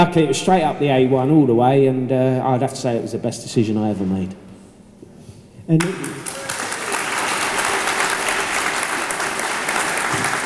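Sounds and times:
speech: 0.0 - 4.4, 5.7 - 6.3
round of applause from an audience: 5.8 - 10.4.

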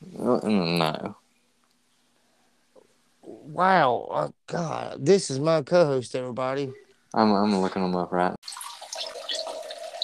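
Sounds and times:
speech: 0.2 - 1.2, 3.5 - 8.7
person urinating into a toilet: 8.4 - 10.0.

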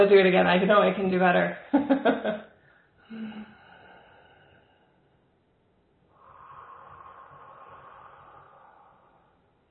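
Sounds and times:
speech: 0.0 - 2.5, 3.1 - 3.6
deep breathing exercise: 2.5 - 5.2, 6.1 - 9.6.

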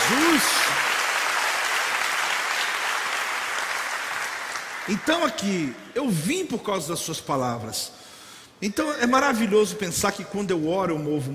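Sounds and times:
crowd applauding: 0.0 - 5.5
speech: 0.1 - 0.9, 4.9 - 8.0, 8.6 - 11.3.

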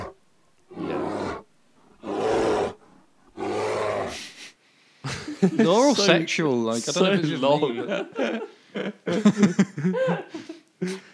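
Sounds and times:
grizzly bear roaring: 0.0 - 4.4
laughter: 4.1 - 11.0
speech: 5.4 - 11.1.

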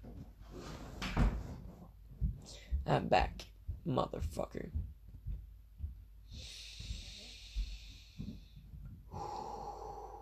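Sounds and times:
faint low thumps: 1.2 - 9.4
speech: 2.9 - 4.8
deep breath during meditation: 6.2 - 10.2.

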